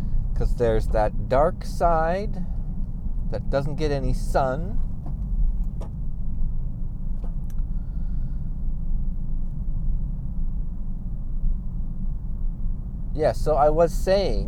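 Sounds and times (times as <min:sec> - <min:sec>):
car deep engine and tyre rumble on a road on a frosty day: 0:00.0 - 0:14.4
speech: 0:00.4 - 0:02.6, 0:03.3 - 0:04.9, 0:13.2 - 0:14.4
faint clicks and rattles overhead: 0:04.7 - 0:06.4.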